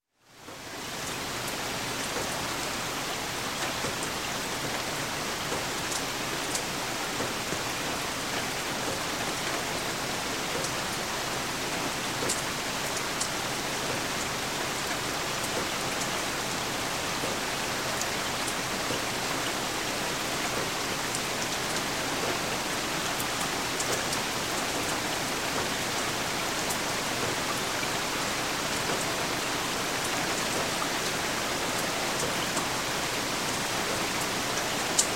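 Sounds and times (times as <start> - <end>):
medium rain on a lake: 0.0 - 35.1.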